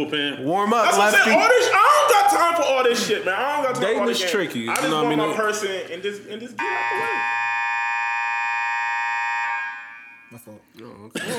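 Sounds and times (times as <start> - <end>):
speech: 0.0 - 7.4
laughter: 0.9 - 3.9, 6.3 - 7.4, 11.2 - 11.3
Amber Alert emergency alert tone from a phone: 6.6 - 10.4.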